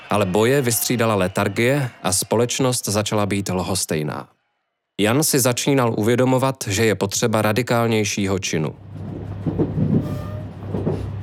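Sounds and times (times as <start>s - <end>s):
speech: 0.1s - 4.4s, 5.0s - 9.6s
train running on rails: 8.8s - 11.2s.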